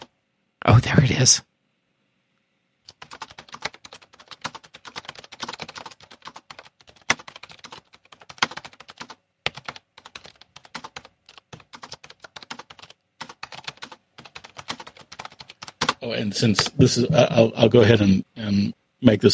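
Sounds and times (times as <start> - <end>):
speech: 0.7 - 1.5, 16.2 - 19.3
person typing on a computer keyboard: 2.9 - 16.0.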